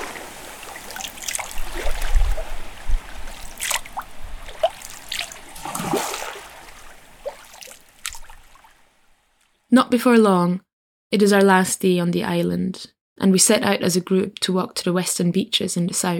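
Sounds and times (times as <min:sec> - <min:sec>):
water lapping and trickling while swimming: 0:00.0 - 0:09.5
speech: 0:09.7 - 0:16.1.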